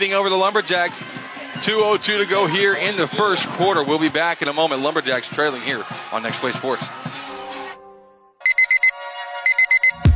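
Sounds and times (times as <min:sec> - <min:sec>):
speech: 0:00.0 - 0:07.2
alarm clock beeping: 0:08.4 - 0:10.0.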